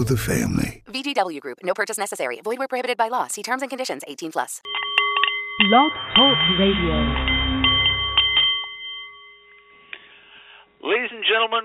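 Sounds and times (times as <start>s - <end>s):
speech: 0.0s - 4.9s, 5.6s - 7.4s, 10.8s - 11.6s
Nepalese meditation singing bowl ringing: 4.7s - 10.0s.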